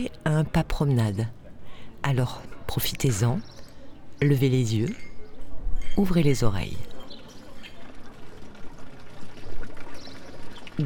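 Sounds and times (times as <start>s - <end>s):
speech: 0.0s - 1.4s, 2.0s - 3.6s, 4.2s - 5.1s, 6.0s - 6.9s
water flowing from a village fountain in the Alps: 6.2s - 10.8s.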